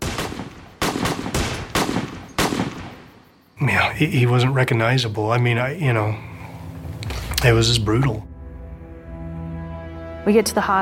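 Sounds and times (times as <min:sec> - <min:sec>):
handgun shots: 0:00.0 - 0:03.0
speech: 0:03.6 - 0:06.3, 0:07.4 - 0:08.3, 0:10.2 - 0:10.7.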